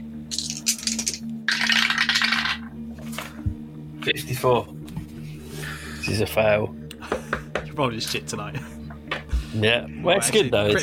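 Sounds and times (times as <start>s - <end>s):
dice rattling and clattering: 0.3s - 2.6s
speech: 4.0s - 4.8s, 6.1s - 6.8s, 7.8s - 8.7s, 9.5s - 10.8s.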